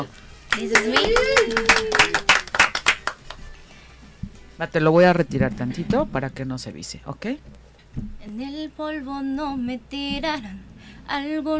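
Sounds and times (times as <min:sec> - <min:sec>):
speech: 0:00.0 - 0:02.2, 0:04.6 - 0:11.5
small audience clapping hands: 0:00.5 - 0:03.6.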